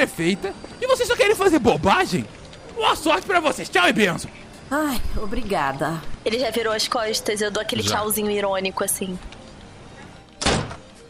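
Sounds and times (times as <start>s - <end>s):
speech: 0.0s - 9.3s
door slamming: 10.4s - 10.9s.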